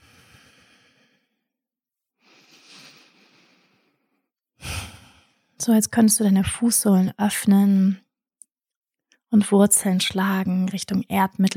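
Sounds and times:
deep slow breathing during a guided meditation: 0.0s - 1.5s, 2.2s - 5.6s
speech: 5.6s - 8.0s, 9.3s - 11.5s.

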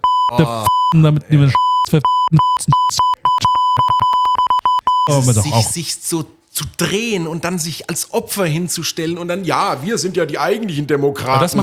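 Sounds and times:
electronic beeping: 0.0s - 5.7s
speech: 0.3s - 3.2s, 5.1s - 11.6s.

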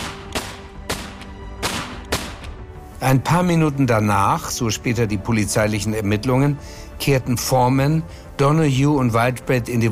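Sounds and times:
sharp gunshots: 0.0s - 2.5s
speech: 3.0s - 9.9s.

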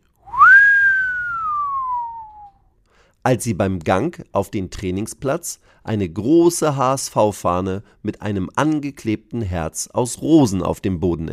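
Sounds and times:
long clear whistle swooping up and gliding down in pitch: 0.2s - 2.6s
speech: 3.2s - 11.3s.

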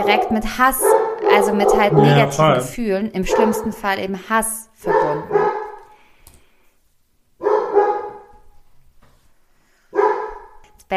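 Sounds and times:
dog barking: 0.0s - 2.3s, 3.3s - 3.8s, 4.8s - 5.9s, 7.4s - 8.4s, 9.9s - 10.6s
speech: 0.0s - 5.3s.

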